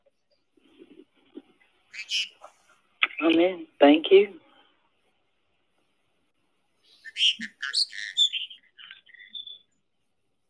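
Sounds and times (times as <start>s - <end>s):
small pet birds chirping and tweeting: 1.9s - 2.7s, 6.8s - 9.9s
speech: 2.0s - 2.4s, 3.2s - 4.4s, 7.2s - 8.1s
thin whistled bird notes: 6.9s - 9.8s.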